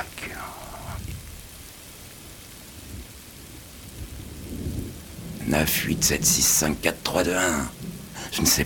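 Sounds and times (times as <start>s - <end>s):
steady rain pouring: 0.0s - 8.6s
speech: 5.5s - 8.6s.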